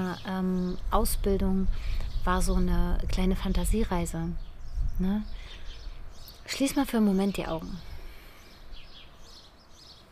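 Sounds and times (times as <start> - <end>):
birds chirping outdoors: 0.0 - 10.1
outdoor hiss: 0.0 - 10.1
speech: 0.1 - 5.6, 6.5 - 7.9.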